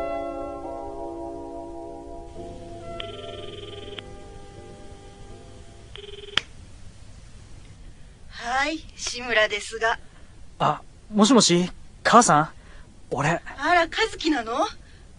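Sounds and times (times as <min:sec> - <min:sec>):
faint hum: 0:00.0 - 0:15.1
electronic telephone rings heard through a receiver: 0:02.8 - 0:04.2, 0:06.0 - 0:06.4
speech: 0:08.7 - 0:14.8.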